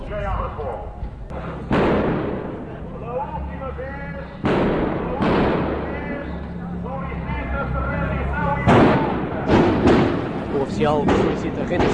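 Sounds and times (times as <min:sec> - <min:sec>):
murmur: 0:00.0 - 0:11.9
speech: 0:00.1 - 0:01.7, 0:10.7 - 0:11.9
loud sharp cracks of gunfire fired into the air: 0:01.7 - 0:02.6, 0:04.4 - 0:06.0, 0:08.7 - 0:11.9.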